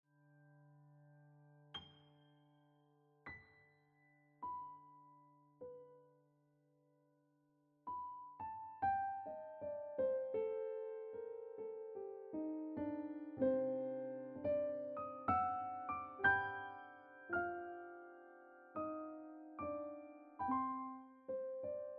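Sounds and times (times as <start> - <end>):
piano ringtone music: 7.9 - 21.9.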